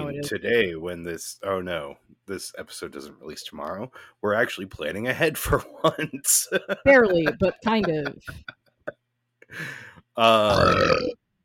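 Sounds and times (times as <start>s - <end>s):
speech: 0.2s - 8.6s, 9.5s - 11.2s
laughter: 5.4s - 8.5s
loud burp with rough voiced tone: 10.2s - 11.2s
short throaty gulp: 10.3s - 11.2s.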